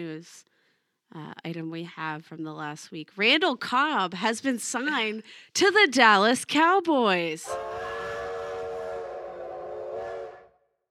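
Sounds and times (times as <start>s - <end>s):
speech: 0.0s - 0.5s, 1.1s - 7.9s
train whistle: 7.4s - 10.8s.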